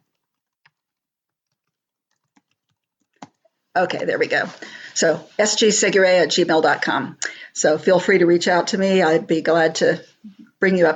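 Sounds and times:
typing on a computer keyboard: 0.2s - 3.5s
speech: 3.8s - 10.9s.

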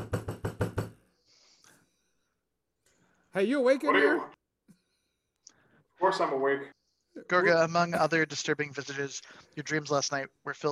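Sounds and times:
loud heavy knocking on a door: 0.0s - 1.0s
speech: 3.4s - 4.4s, 6.1s - 10.7s.

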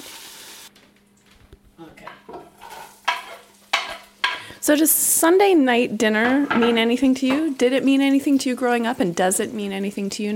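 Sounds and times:
ingredients melting and sizzling in a pan: 0.0s - 0.7s, 2.2s - 10.3s
utensil clinking against a pan: 2.1s - 4.4s
stirring scrapes in a pan: 2.4s - 3.9s
speech: 4.7s - 10.3s.

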